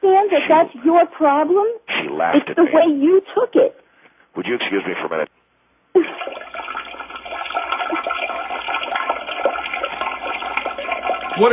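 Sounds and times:
speech: 0.3s - 3.8s, 4.4s - 5.4s, 11.4s - 11.5s
toilet flushing: 6.0s - 11.5s.

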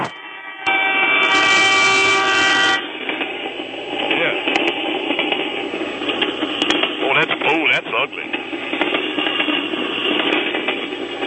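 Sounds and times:
sustained tonal horn-like blare of a train: 0.0s - 3.0s
train rumbling past on railroad tracks: 0.0s - 11.2s.

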